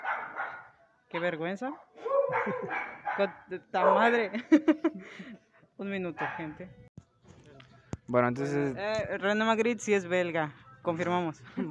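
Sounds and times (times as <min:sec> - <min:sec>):
dogs barking outdoors: 0:00.0 - 0:01.4, 0:02.0 - 0:04.4, 0:06.2 - 0:06.6
speech: 0:01.1 - 0:06.8, 0:08.1 - 0:11.6
laughter: 0:02.1 - 0:02.8, 0:04.3 - 0:05.4.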